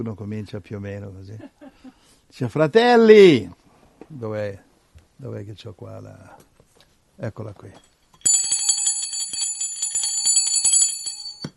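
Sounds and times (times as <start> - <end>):
speech: 0.0 - 1.6, 2.3 - 6.5, 7.2 - 7.9
handbell ringing: 8.2 - 11.5.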